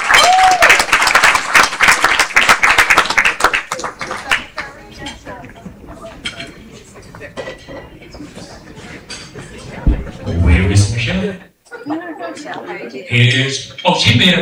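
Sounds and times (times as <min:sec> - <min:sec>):
audience applause at a Guyana Cultural Association event: 0:00.0 - 0:04.4
murmuring voices: 0:09.9 - 0:11.4
speech: 0:13.1 - 0:14.4.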